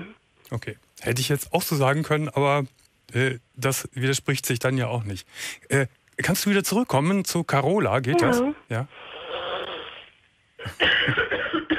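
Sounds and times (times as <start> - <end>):
speech: 0.5 - 9.1, 10.6 - 11.3
person coughing in dry, rough bursts: 10.6 - 11.7.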